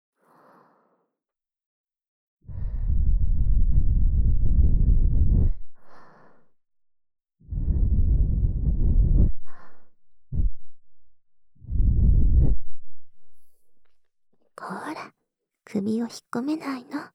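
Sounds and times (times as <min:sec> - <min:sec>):
soft breath blown into someone's ear during ear cleaning: 0:00.2 - 0:01.1, 0:02.5 - 0:06.6, 0:07.5 - 0:10.8, 0:11.6 - 0:13.6
speech: 0:15.8 - 0:17.1.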